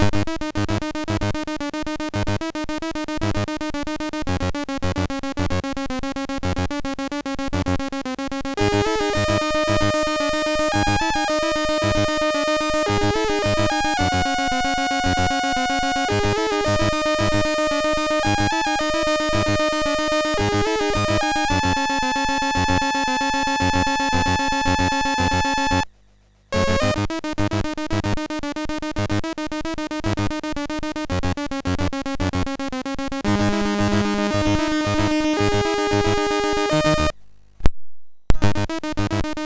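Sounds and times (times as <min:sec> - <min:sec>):
MOS6581R2 SID chip synthesizer tones: 0:00.0 - 0:25.9, 0:26.5 - 0:37.1, 0:38.3 - 0:39.4.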